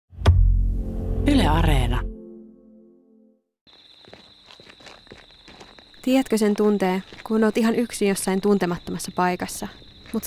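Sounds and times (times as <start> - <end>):
sustained musical tone: 0.4 - 3.4
speech: 1.2 - 2.1, 6.0 - 10.2
footsteps crunching through undergrowth: 3.7 - 8.4
rustling ground in night forest: 3.7 - 8.6, 9.3 - 10.2
high insect trill in night forest: 3.7 - 10.2.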